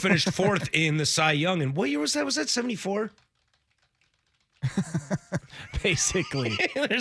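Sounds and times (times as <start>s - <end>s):
laughter: 0.0s - 0.9s, 4.6s - 7.0s
speech: 0.0s - 3.3s, 4.6s - 7.0s
typing on a computer keyboard: 3.1s - 5.5s.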